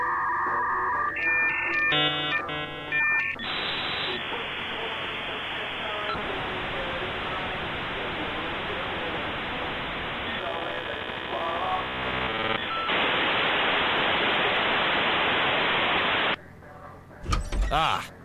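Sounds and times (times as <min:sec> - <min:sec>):
electronic tones: 0:00.0 - 0:04.2
harsh hissing electronic static: 0:00.9 - 0:16.4
creaking door sound effect on a computer: 0:17.2 - 0:18.1.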